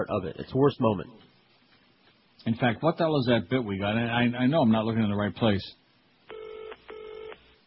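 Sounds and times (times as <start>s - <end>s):
speech: 0.0s - 1.4s, 2.4s - 5.8s
telephone dial tone: 6.3s - 7.4s.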